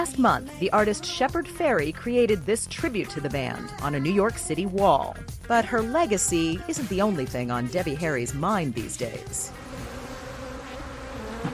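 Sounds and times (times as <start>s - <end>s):
speech: 0.0s - 9.7s
bees buzzing: 8.8s - 11.5s.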